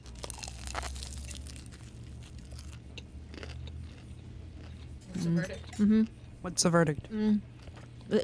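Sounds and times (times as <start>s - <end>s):
crisp crunching bites into a fried egg roll with cabbage filling: 0.0s - 4.9s
low steady hum: 0.0s - 8.2s
speech: 5.3s - 7.5s, 8.1s - 8.2s.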